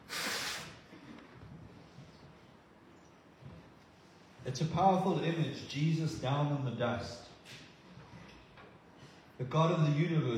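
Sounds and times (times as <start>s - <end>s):
loud forceful nose blow: 0.0s - 0.8s
speech: 4.4s - 7.3s, 9.4s - 10.3s.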